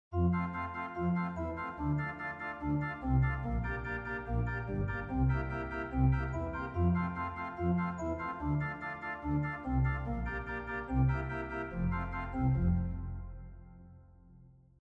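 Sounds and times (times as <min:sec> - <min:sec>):
romantic organ music: 0:00.1 - 0:14.7.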